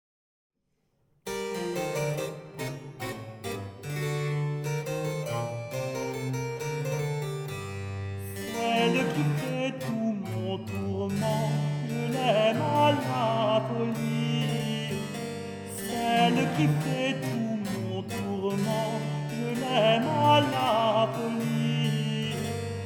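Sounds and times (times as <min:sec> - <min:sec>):
tenor singing a baroque couplet: 0:01.4 - 0:22.8.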